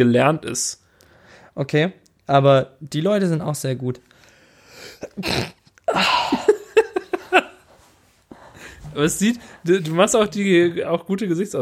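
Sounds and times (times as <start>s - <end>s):
speech: 0.0s - 0.8s, 1.6s - 4.1s, 4.9s - 6.5s, 9.0s - 11.5s
faint breath: 0.8s - 1.6s, 4.1s - 5.0s
person sneezing loudly: 4.8s - 6.6s
laughter: 6.0s - 7.6s.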